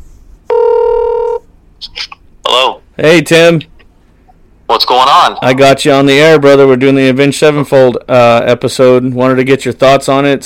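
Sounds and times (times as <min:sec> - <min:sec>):
steady electronic telephone ringback tone: 0:00.5 - 0:01.4
speech: 0:03.0 - 0:03.7, 0:04.8 - 0:10.4.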